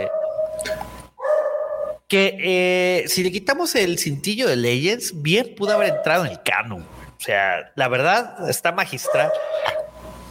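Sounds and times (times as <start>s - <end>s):
dog barking: 1.2s - 2.0s, 5.7s - 6.4s, 9.0s - 10.0s
speech: 2.1s - 9.8s.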